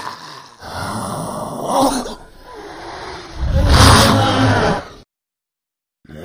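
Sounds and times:
monster attack vocals: 0:00.7 - 0:05.0.

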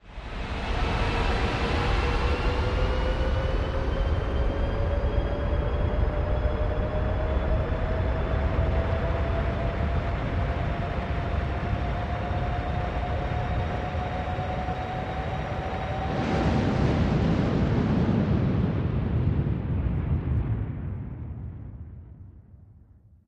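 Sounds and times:
rocket taking off and landing: 0:00.2 - 0:22.2.

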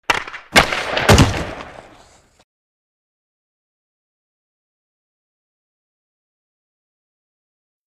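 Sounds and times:
hockey puck hit slamming: 0:00.1 - 0:02.0.

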